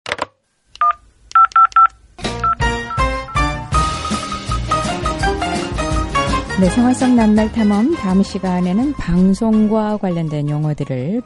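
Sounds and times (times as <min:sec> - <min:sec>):
telephone keypad dialing tones: 0:00.8 - 0:03.5
music: 0:02.2 - 0:11.2
speech: 0:06.6 - 0:11.2.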